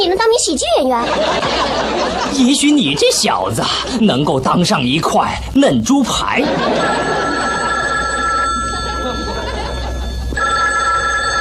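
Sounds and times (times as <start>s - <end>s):
speech: 0.0s - 7.4s
low hum: 0.0s - 11.3s
laughter: 1.0s - 4.2s, 6.0s - 10.4s
telephone ringing with a bright metallic tone: 6.4s - 11.3s.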